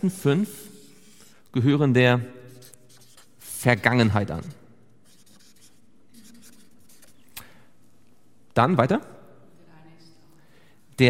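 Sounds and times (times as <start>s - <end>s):
speech: 0.0s - 0.7s, 1.5s - 2.4s, 3.6s - 4.6s, 8.6s - 9.1s
faint scratching of something being written down: 0.5s - 1.5s, 2.5s - 3.8s, 4.4s - 7.4s.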